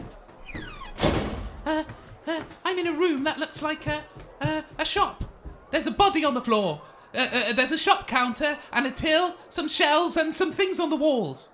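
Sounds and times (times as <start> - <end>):
door creaking shut: 0.4 - 1.7
speech: 1.7 - 11.5.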